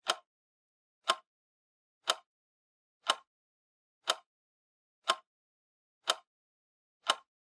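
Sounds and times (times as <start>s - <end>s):
clock second hand: 0.0s - 0.3s, 1.0s - 1.3s, 2.0s - 2.3s, 3.0s - 3.3s, 4.0s - 4.3s, 5.0s - 5.3s, 6.0s - 6.3s, 7.0s - 7.3s.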